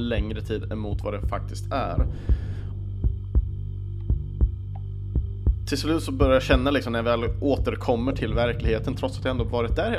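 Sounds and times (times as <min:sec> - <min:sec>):
speech: 0:00.0 - 0:02.5, 0:05.7 - 0:09.9
deep heartbeat thumping in lub-dub pairs: 0:00.0 - 0:06.8, 0:08.3 - 0:08.9
constant low hum: 0:00.0 - 0:09.9.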